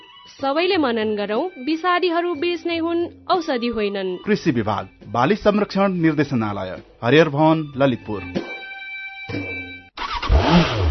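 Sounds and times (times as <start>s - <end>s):
speech: 0.3s - 8.5s, 9.3s - 9.7s
Bangladesh-made motorcycle engine revving: 9.3s - 10.9s.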